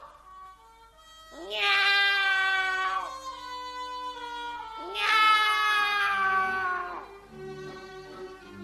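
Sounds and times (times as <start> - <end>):
loud drawn-out cat meows: 1.3 - 7.1.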